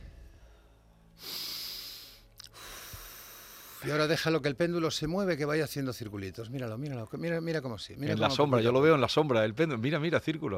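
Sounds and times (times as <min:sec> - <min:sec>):
deep airy inhale: 0:00.0 - 0:03.9
long steady exhale: 0:00.2 - 0:03.9
speech: 0:03.8 - 0:10.5.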